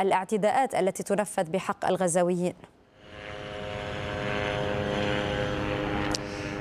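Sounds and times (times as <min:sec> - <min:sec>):
speech: 0:00.0 - 0:02.8
reconnaissance drones flying overhead with droning propeller buzz: 0:02.9 - 0:06.6.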